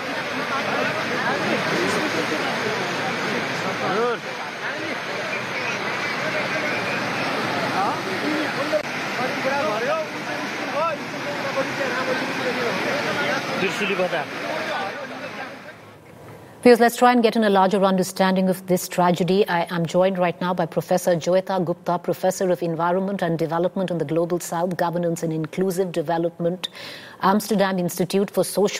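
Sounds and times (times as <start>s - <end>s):
rushing flood water through streets: 0.0s - 16.0s
speech: 3.8s - 7.2s, 7.8s - 14.6s, 16.6s - 28.7s.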